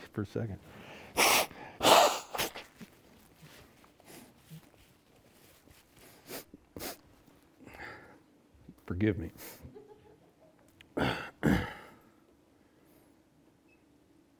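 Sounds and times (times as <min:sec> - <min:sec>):
speech: 0:00.2 - 0:00.9, 0:09.0 - 0:09.6
person sniffing and snorting breaths: 0:01.0 - 0:02.8, 0:06.0 - 0:07.0
person blowing their nose: 0:01.1 - 0:02.8, 0:06.0 - 0:07.0.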